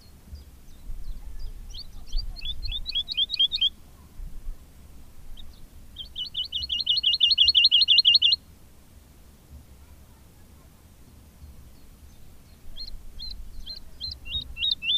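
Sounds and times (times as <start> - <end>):
woodlark singing: 0.0 - 3.8, 5.4 - 8.5, 11.4 - 14.9.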